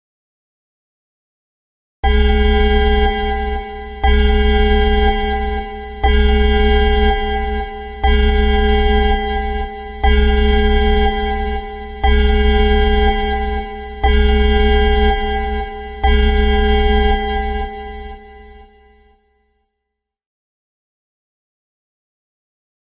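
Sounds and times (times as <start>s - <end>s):
nuclear power plant alarm: 2.0s - 19.5s.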